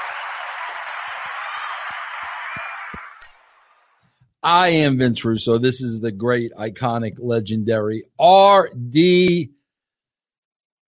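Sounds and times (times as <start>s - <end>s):
crowd applauding: 0.0s - 3.2s
speech: 4.4s - 9.6s.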